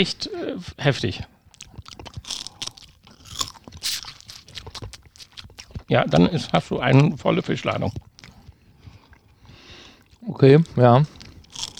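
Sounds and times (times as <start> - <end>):
speech: 0.0 - 1.3, 5.9 - 8.1, 10.2 - 11.2
crunching crispy seaweed snack being chewed: 1.5 - 5.9, 10.1 - 11.7.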